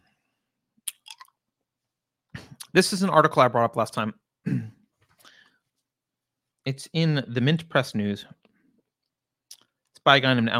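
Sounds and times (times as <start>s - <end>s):
someone chewing a hard cough drop: 0.9s - 1.4s
speech: 2.8s - 4.7s, 6.7s - 8.4s, 10.0s - 10.5s.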